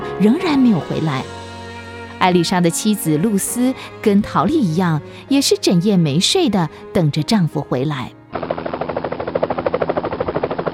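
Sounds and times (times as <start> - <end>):
speech: 0.2 - 1.4, 2.2 - 8.5
propeller airplane droning overhead: 8.4 - 10.7.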